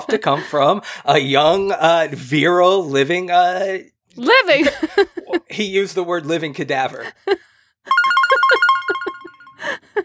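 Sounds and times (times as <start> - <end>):
speech: 0.0 - 7.4
cell phone ringtone with bright beeping notes: 7.9 - 9.8.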